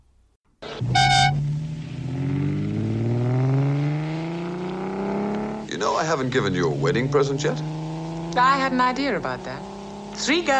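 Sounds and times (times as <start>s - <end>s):
4-litre straight-six car engine roaring as the car drives off: 0.5s - 10.5s
short horn-like toot: 0.7s - 1.5s
speech: 6.0s - 7.8s, 8.4s - 10.5s.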